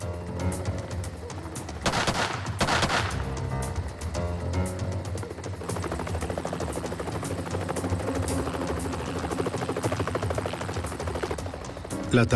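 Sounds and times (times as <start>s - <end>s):
helicopter rotor chopping overhead: 0.0s - 12.3s
loud bursts of gunfire from a sniper: 1.8s - 3.4s
speech: 12.1s - 12.3s.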